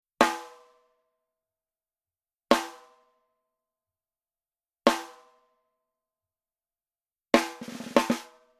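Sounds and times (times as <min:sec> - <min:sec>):
coated snare drum rim shot: 0:07.4 - 0:08.3.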